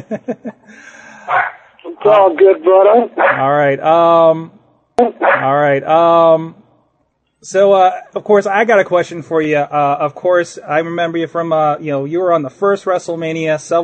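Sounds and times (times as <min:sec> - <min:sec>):
laughter: 0:00.0 - 0:01.0
speech: 0:00.0 - 0:06.6, 0:07.4 - 0:13.8
dogs barking and yelping: 0:01.2 - 0:01.7, 0:03.2 - 0:03.4, 0:05.1 - 0:05.5.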